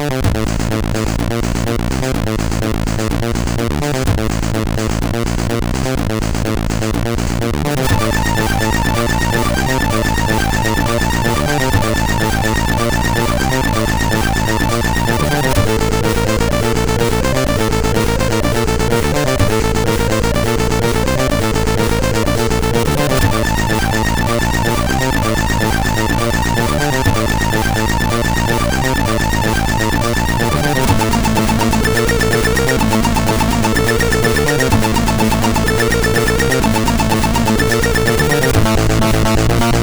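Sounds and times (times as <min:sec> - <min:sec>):
techno music on MOS6581R4 SID chip: 0:00.2 - 0:39.8.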